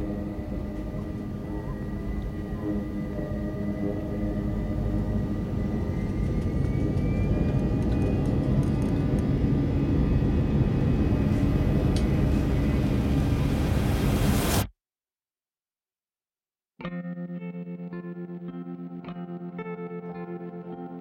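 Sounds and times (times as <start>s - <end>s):
airplane engines roaring during takeoff heard from inside the cabin: 0.0s - 14.6s.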